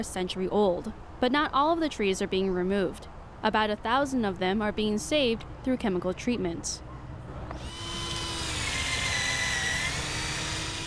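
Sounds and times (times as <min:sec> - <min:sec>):
speech: 0:00.0 - 0:06.8
outdoor noise: 0:00.0 - 0:10.8
power drill boring small holes into ash tree: 0:07.5 - 0:10.8.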